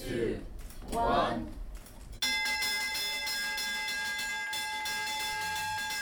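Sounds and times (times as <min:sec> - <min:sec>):
speech: 0:00.1 - 0:01.6
Euronext Stock Exchange opening bell ringing in Paris: 0:02.2 - 0:05.9.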